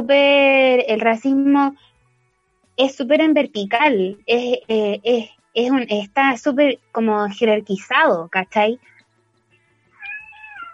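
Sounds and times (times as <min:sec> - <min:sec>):
speech: 0:00.0 - 0:01.9, 0:02.8 - 0:08.9
cat meowing: 0:10.0 - 0:10.7.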